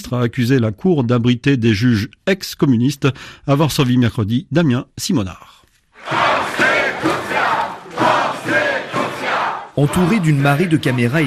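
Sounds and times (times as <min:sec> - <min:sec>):
speech: 0:00.1 - 0:07.1, 0:09.8 - 0:11.2
large crowd of protesters chanting: 0:06.0 - 0:11.2.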